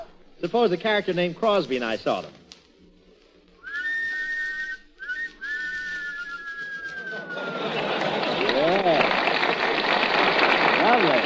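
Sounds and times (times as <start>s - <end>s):
speech: 0.4s - 2.4s
two men wolf-whistling at girls in harmony: 3.6s - 8.0s
laughter: 6.6s - 11.2s.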